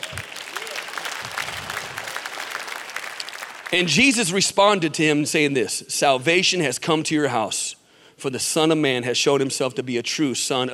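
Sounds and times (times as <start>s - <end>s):
audience applauding: 0.0s - 4.0s
speech: 3.7s - 10.7s.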